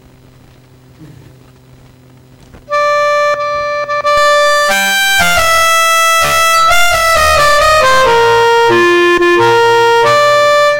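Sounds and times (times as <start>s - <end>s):
MIDI clarinet music rendered by LilyPond notation software: 2.7s - 10.7s.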